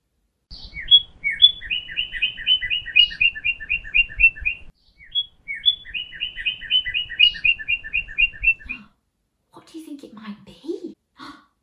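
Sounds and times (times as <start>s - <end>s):
small bird chirping and trilling: 0.5s - 9.0s.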